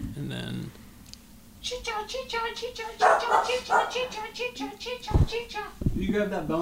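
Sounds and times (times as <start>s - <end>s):
speech: 1.6s - 6.6s
dog barking: 3.0s - 4.3s.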